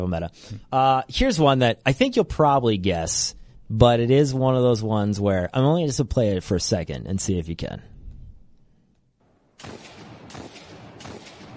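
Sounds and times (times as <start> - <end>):
speech: 0.0 - 7.9, 9.6 - 9.9
video game hand cannon gunshots: 9.6 - 11.5.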